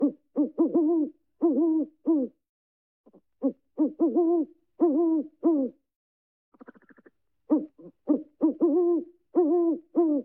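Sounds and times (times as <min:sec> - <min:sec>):
great horned owl hooting: 0:00.0 - 0:02.3, 0:03.4 - 0:05.8, 0:06.6 - 0:10.2.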